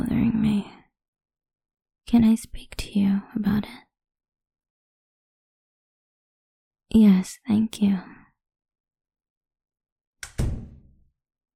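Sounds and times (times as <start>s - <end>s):
speech: 2.1s - 3.9s, 6.9s - 8.2s
door swinging shut: 10.2s - 11.0s.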